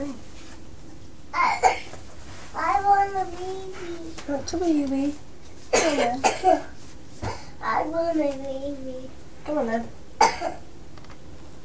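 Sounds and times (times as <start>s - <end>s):
young child coughing: 1.4s - 2.0s, 5.7s - 7.6s, 10.2s - 10.6s
speech: 4.3s - 6.7s, 7.8s - 10.6s.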